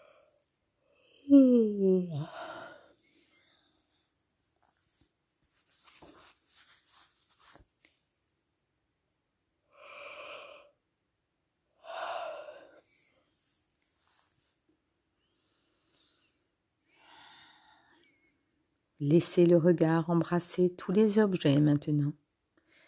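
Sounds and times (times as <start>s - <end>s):
loud yawn with sliding groan: 1.2s - 2.9s
soft breathy exhalations: 2.0s - 3.9s, 11.8s - 13.2s, 16.9s - 18.0s
quiet rustling: 3.3s - 8.4s, 13.2s - 14.8s
speech: 19.0s - 22.2s.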